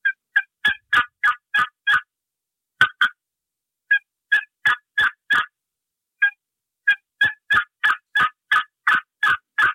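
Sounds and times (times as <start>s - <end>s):
turkey call making raspy yelps at turkey rhythm: 0.0s - 2.1s, 2.8s - 3.2s, 3.9s - 5.5s, 6.2s - 9.7s.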